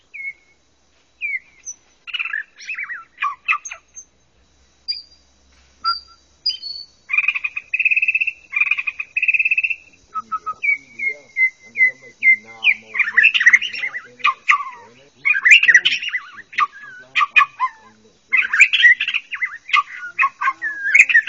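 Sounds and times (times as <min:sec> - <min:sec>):
bird singing: 0:00.0 - 0:21.2.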